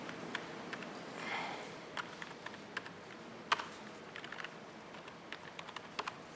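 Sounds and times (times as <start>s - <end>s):
irregular typing on an unfamiliar computer keyboard: 0.1s - 0.9s, 1.9s - 6.2s
faint breathy sniff: 1.1s - 1.9s.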